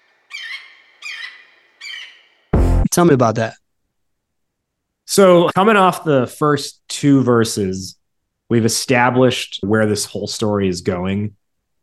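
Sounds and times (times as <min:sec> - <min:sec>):
birds calling in short bright raspy bursts: 0:00.0 - 0:02.5
speech: 0:03.0 - 0:03.6, 0:05.1 - 0:11.4.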